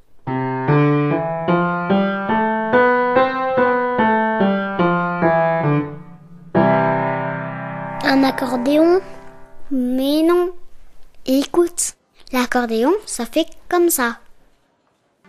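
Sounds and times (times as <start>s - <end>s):
piano notes: 0.2s - 10.5s
speech: 8.4s - 9.1s, 12.6s - 14.2s.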